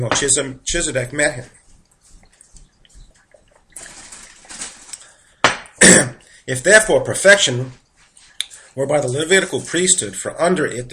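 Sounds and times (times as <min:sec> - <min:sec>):
speech: 0:00.0 - 0:01.6, 0:06.5 - 0:07.8, 0:08.8 - 0:10.9
person drinking water from a glass: 0:01.5 - 0:06.4.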